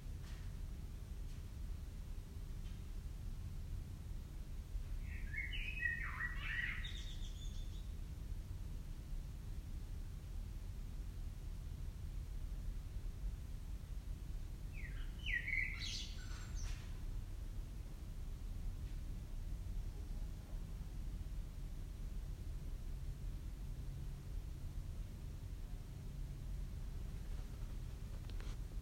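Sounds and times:
low background noise: 0.0s - 28.8s
common blackbird singing: 5.0s - 7.9s, 14.7s - 16.8s.

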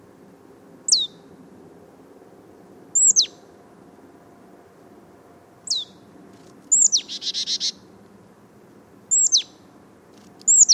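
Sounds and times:
Marsh Tit Poecile palustris calling: 0.9s - 1.2s, 2.9s - 3.4s, 5.6s - 6.0s, 6.7s - 7.8s, 9.1s - 9.6s, 10.4s - 10.7s.

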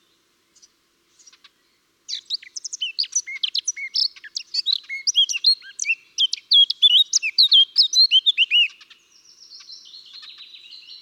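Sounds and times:
Eurasian blackcap Sylvia atricapilla singing fluty whistles and chirps: 2.1s - 8.8s.

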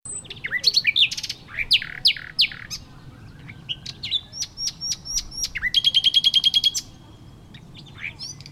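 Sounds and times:
Common nightingale Luscinia megarhynchos singing varied phrases: 0.1s - 8.5s.

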